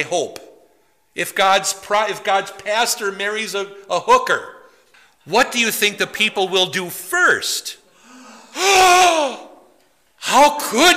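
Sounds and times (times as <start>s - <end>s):
speech: 0.0s - 0.4s, 1.2s - 4.6s, 5.2s - 7.8s, 8.6s - 9.5s, 10.2s - 10.9s
loud dramatic gasp: 7.9s - 9.6s.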